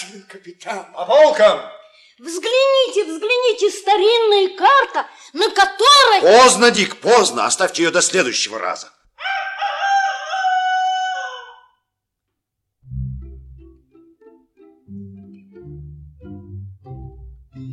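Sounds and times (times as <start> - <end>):
speech: 0.0 - 9.0
rooster crowing: 9.2 - 11.8
soft instrumental music with low bass notes: 12.8 - 17.7.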